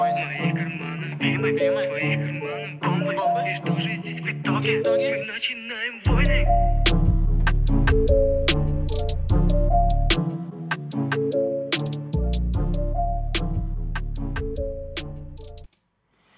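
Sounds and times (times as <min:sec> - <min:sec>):
hip-hop track with hi-hats and layered melody: 0:00.0 - 0:15.7
heavy booming bass line: 0:06.1 - 0:10.3, 0:11.1 - 0:15.7.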